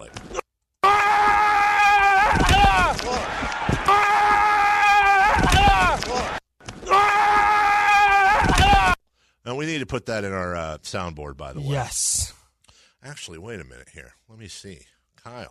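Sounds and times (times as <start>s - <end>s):
offensive football lineman screaming during a play: 0.8s - 3.3s, 3.9s - 9.0s
speech: 9.6s - 12.3s, 13.0s - 15.5s.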